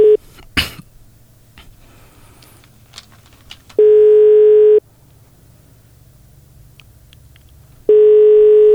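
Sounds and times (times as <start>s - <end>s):
telephone ringback tone while calling a health ministry hotline: 3.8s - 4.8s, 7.9s - 8.7s.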